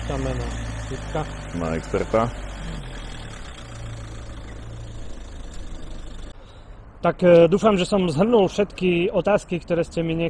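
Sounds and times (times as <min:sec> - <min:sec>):
BMW car engine rumbling and pulling away: 0:00.0 - 0:08.0
speech: 0:00.1 - 0:02.8, 0:07.0 - 0:10.2.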